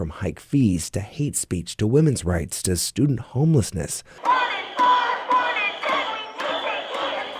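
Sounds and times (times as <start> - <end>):
speech: 0.0 - 4.6
crowd of protesting students chanting while marching through a campus: 4.2 - 7.3.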